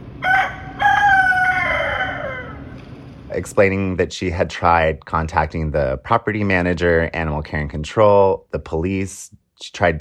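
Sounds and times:
rooster crowing in a video: 0.2s - 2.8s
speech: 3.4s - 10.0s.

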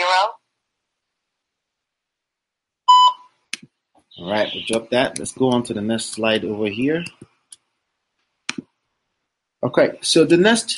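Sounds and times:
single electronic voicemail beep: 2.9s - 3.3s
speech: 4.2s - 7.3s, 9.6s - 10.7s.

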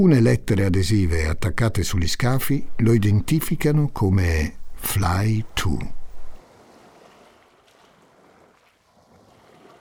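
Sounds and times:
speech: 0.0s - 6.0s
wind at sea: 0.0s - 9.7s
catamaran cutting through calm sea waves: 4.8s - 9.7s.

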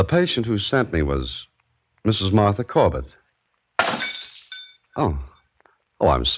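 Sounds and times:
speech: 0.0s - 3.2s, 5.0s - 5.3s, 6.0s - 6.3s
drinking glass of water falling and shattering: 3.8s - 5.0s.

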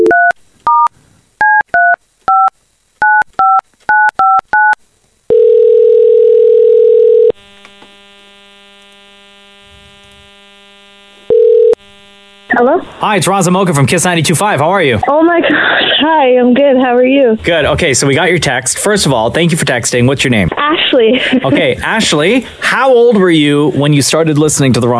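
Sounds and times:
telephone keypad tones dialing a number: 0.0s - 7.3s
telephone dial tone: 1.5s - 8.0s, 11.3s - 11.8s
speech: 12.6s - 24.9s.

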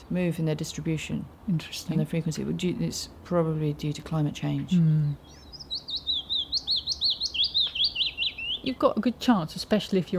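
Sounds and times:
faint noise: 0.0s - 10.1s
speech: 0.1s - 5.4s, 8.6s - 10.1s
tiny migratory bird singing high clear chirping notes: 2.7s - 10.1s.

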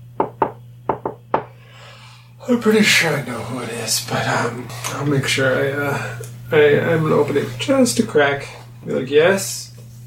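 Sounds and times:
light knocking on a wooden door: 0.2s - 1.5s
speech: 2.4s - 9.7s.

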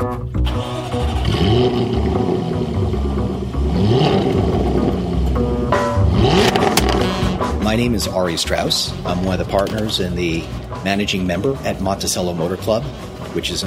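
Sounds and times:
2013 Jaguar F-Type convertible engine starting up and revving: 0.4s - 10.7s
speech: 7.7s - 13.6s.

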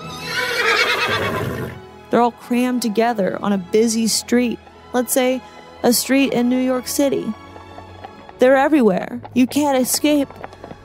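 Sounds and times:
horse neighing and whinnying: 0.0s - 1.8s
speech: 2.2s - 7.4s, 8.4s - 10.5s.

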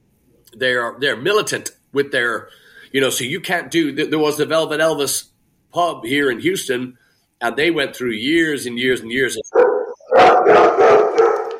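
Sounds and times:
speech: 0.5s - 10.3s
hound dog barking howls: 9.5s - 11.5s
hound dog baying: 9.5s - 11.5s.

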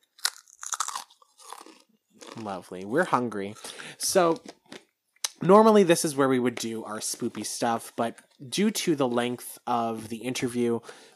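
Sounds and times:
biting into a crunchy snack: 0.1s - 2.6s
speech: 2.4s - 4.6s, 5.4s - 11.1s.

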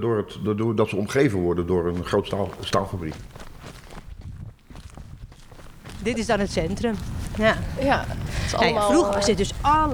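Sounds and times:
speech: 0.0s - 3.5s, 6.0s - 9.9s
faint outdoor ambience: 0.0s - 9.9s
footsteps walking along a village street in Wijk aan Zee: 1.8s - 8.3s.

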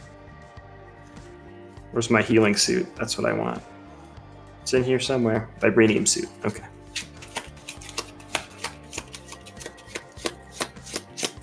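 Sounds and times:
speech: 1.9s - 3.8s, 4.7s - 6.7s
deck of cards being shuffled during a card game: 5.9s - 11.4s.

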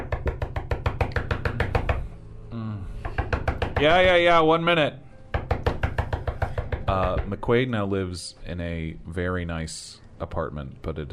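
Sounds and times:
sharp knocking on a door: 0.0s - 2.1s, 3.0s - 4.2s, 5.3s - 7.4s
speech: 3.8s - 5.0s, 6.9s - 11.1s.

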